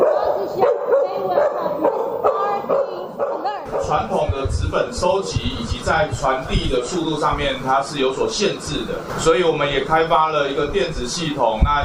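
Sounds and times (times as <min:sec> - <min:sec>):
search and rescue dog barking alert: 0:00.0 - 0:04.1
steady voices or crowd murmur: 0:00.0 - 0:06.2
speech: 0:04.4 - 0:11.8.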